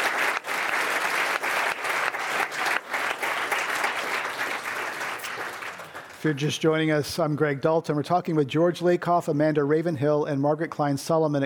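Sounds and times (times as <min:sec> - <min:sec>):
live audience applause: 0:00.0 - 0:06.6
speech: 0:06.2 - 0:11.4.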